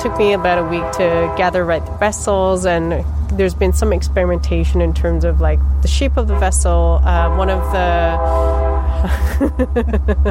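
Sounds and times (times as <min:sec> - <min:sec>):
train horn sounding a sustained chord: 0:00.0 - 0:02.0, 0:06.2 - 0:09.1
deep low rumble of a passing train: 0:00.0 - 0:10.2
speech: 0:00.0 - 0:10.2
laughter: 0:09.0 - 0:10.2.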